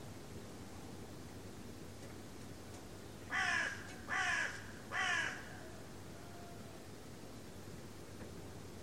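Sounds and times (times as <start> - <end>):
steady low background noise: 0.0 - 8.8
crow-like bird cawing: 3.3 - 6.6.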